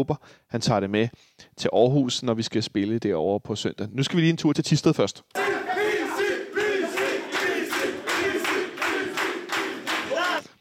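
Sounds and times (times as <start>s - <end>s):
speech: 0.0s - 5.4s
group of players cheering and chanting in a locker room: 5.4s - 10.5s.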